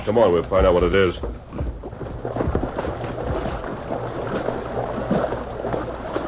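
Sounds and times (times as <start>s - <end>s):
speech: 0.0s - 1.6s
fast-flowing river water churning: 0.0s - 6.2s
someone wading hip-deep through fast river current: 1.2s - 6.2s.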